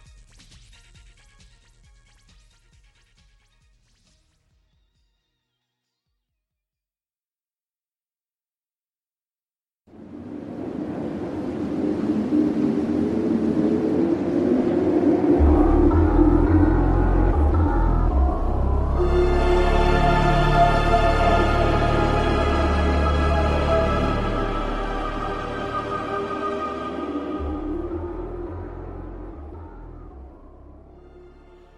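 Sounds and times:
whooshing wind-like wash of noise in a soundtrack piece: 0:09.9 - 0:31.2
deep sustained drone: 0:10.2 - 0:31.7
eerie held tones and chord sequences: 0:14.7 - 0:31.7.

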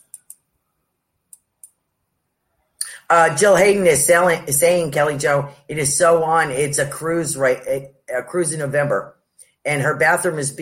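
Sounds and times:
computer mouse clicking through items: 0:00.0 - 0:00.5, 0:01.3 - 0:01.8
speech: 0:03.1 - 0:10.5.

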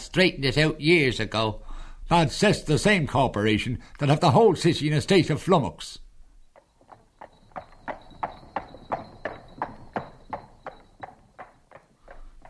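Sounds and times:
speech: 0:00.1 - 0:06.0
horse hooves clip-clopping on a hard street: 0:06.4 - 0:12.4.

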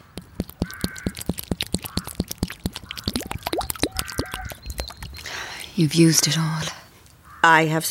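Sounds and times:
water poured out to rinse bare feet on a hill: 0:00.0 - 0:06.1
speech: 0:05.8 - 0:06.8, 0:07.4 - 0:07.8.

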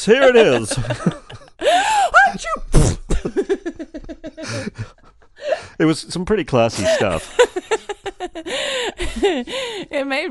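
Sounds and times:
speech: 0:00.0 - 0:01.3, 0:05.8 - 0:07.5, 0:09.2 - 0:10.2
laughter: 0:00.0 - 0:02.4, 0:03.1 - 0:05.6, 0:06.6 - 0:09.8
person sneezing: 0:02.7 - 0:03.2.

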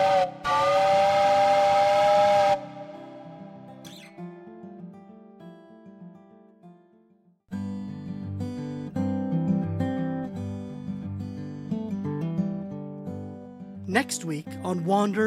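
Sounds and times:
large steam train rolling along the track away from geyser fields: 0:00.0 - 0:03.2
steam train whistle: 0:00.0 - 0:03.9
music: 0:02.2 - 0:15.2
speech: 0:14.0 - 0:15.2.

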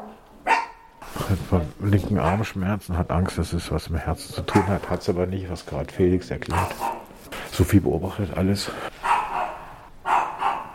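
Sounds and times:
dog barking inside a home during a paramedic call: 0:00.0 - 0:00.9, 0:02.2 - 0:02.6, 0:04.5 - 0:04.8, 0:06.5 - 0:07.1, 0:09.0 - 0:10.7
speech: 0:01.5 - 0:07.0, 0:07.6 - 0:08.9.

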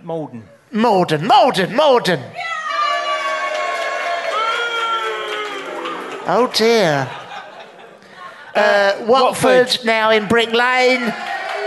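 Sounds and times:
speech: 0:00.0 - 0:02.6, 0:06.3 - 0:07.2, 0:08.6 - 0:11.3
high shouts from crowd: 0:02.0 - 0:06.5
audience cheering and whooping: 0:02.4 - 0:07.5, 0:11.0 - 0:11.6
laughter: 0:04.5 - 0:09.5.

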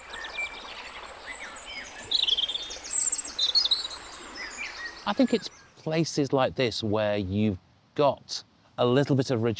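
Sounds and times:
wren singing from the gorse in a valley on the edge of Dartmoor: 0:00.0 - 0:06.0
twittering and chirps of linnet, redpoll and meadow pipit: 0:00.0 - 0:06.2
speech: 0:05.0 - 0:09.5.

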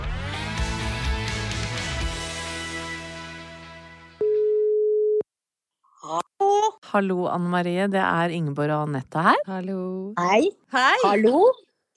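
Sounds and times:
music: 0:00.0 - 0:04.2
telephone call tone while calling a friend: 0:04.2 - 0:05.2
speech: 0:06.9 - 0:11.9.

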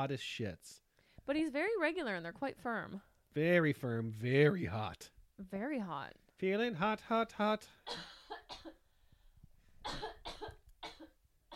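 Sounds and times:
speech: 0:00.0 - 0:08.8
person coughing harshly: 0:07.9 - 0:08.8, 0:09.9 - 0:11.5.

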